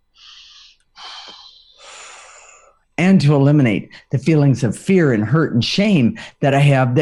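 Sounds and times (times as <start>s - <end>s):
deep breaths during a guided emotional-release exercise: 0.1s - 2.9s, 3.9s - 4.2s, 6.2s - 6.4s
speech: 3.0s - 7.0s.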